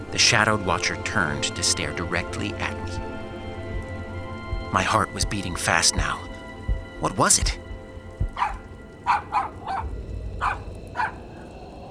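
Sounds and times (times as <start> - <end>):
low rumbling background: 0.0 - 11.8
speech: 0.2 - 3.1, 4.7 - 6.3, 7.0 - 7.6
dog barking in sharp yaps: 8.2 - 11.2.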